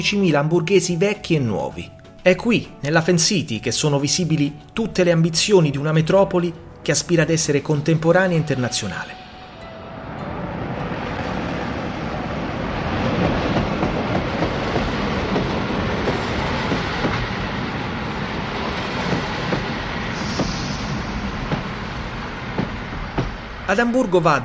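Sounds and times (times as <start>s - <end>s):
speech: 0.0s - 9.2s, 23.7s - 24.4s
train rolling along rails from Berlin Central Station toward Hamburg: 7.2s - 24.4s.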